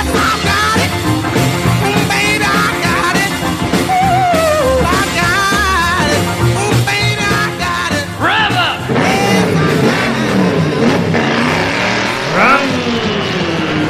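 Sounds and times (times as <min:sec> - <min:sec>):
several car engines revving and roaring: 0:00.0 - 0:13.8
dense continuous mechanical drone: 0:09.0 - 0:13.8.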